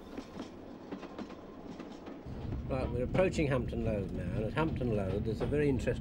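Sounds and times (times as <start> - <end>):
railway train wheels clicking on track: 0.0 - 5.9
single-coach railway train running on rails: 0.0 - 5.9
speech: 2.7 - 5.9.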